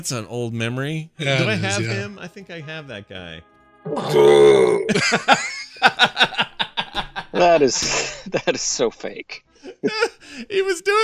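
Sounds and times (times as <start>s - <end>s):
speech: 0.0s - 6.4s, 7.3s - 11.0s
laughter: 1.2s - 2.1s, 4.9s - 8.7s, 9.6s - 10.5s
short choppy burps: 3.9s - 4.9s
long drawn-out belch: 3.9s - 5.0s.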